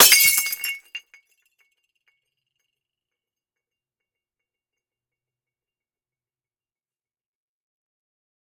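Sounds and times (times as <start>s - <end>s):
glass vase smashing: 0.0s - 1.0s.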